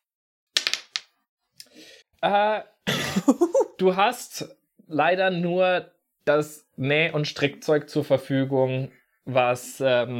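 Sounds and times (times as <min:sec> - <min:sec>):
dice clattering on a hard surface: 0:00.6 - 0:01.2
speech: 0:02.2 - 0:10.1.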